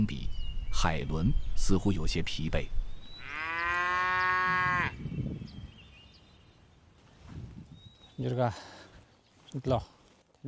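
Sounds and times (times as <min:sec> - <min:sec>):
speech: 0:00.0 - 0:00.2, 0:00.8 - 0:02.8, 0:08.2 - 0:08.8, 0:09.5 - 0:10.0
outdoor noise: 0:00.0 - 0:10.4
cow in a cattle herd mooing: 0:03.2 - 0:05.0.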